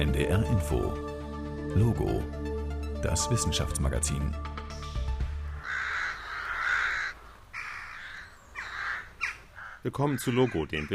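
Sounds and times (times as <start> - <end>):
speech: 0.0 - 1.1, 1.7 - 2.4, 3.0 - 4.5, 9.8 - 10.9
crows cawing: 5.3 - 10.9.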